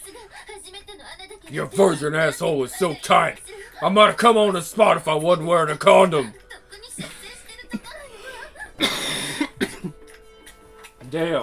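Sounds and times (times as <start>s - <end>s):
speech: 1.5s - 6.4s, 11.1s - 11.4s
person coughing: 8.8s - 10.0s.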